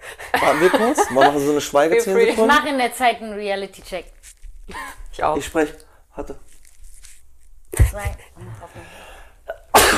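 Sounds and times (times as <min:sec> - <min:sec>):
speech: 0:00.4 - 0:06.5, 0:07.9 - 0:09.1
soft breathy intake: 0:08.4 - 0:09.4
person sneezing: 0:09.7 - 0:09.9.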